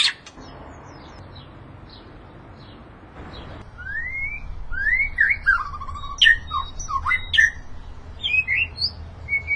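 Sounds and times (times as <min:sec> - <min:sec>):
white-rumped shama song with whistled slurs and sharp chips: 0:03.7 - 0:09.5.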